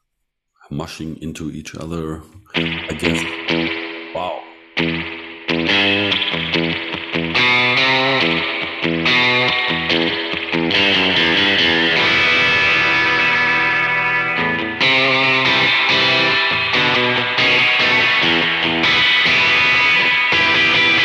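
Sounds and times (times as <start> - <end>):
speech: 0.7 - 3.8
electric guitar with heavy spring reverb strumming sustained chords: 2.5 - 21.0.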